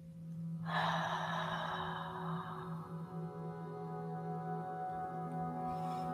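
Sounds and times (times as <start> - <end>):
faint steady hum: 0.0 - 6.1
deep breath drawn in during a guided meditation: 0.6 - 3.3.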